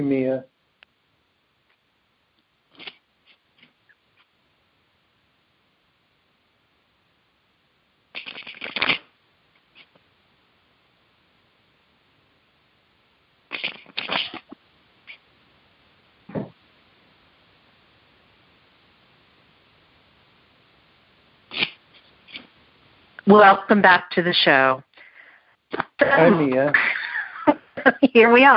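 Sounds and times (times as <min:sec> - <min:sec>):
speech: 0:00.0 - 0:00.5, 0:23.3 - 0:24.9, 0:26.1 - 0:27.0, 0:27.8 - 0:28.5
tarot cards being shuffled, riffling and flicking: 0:08.2 - 0:09.0.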